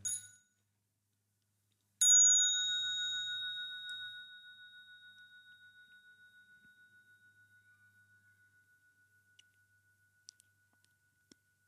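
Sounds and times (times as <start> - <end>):
clamped mindfulness bell ringing: 0.0 - 0.6, 2.0 - 11.6.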